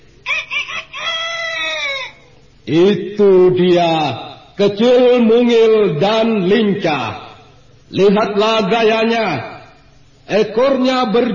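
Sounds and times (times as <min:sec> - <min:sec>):
bantam rooster crowing: 0:00.2 - 0:02.5
speech: 0:02.7 - 0:07.2, 0:07.9 - 0:09.6, 0:10.3 - 0:11.3.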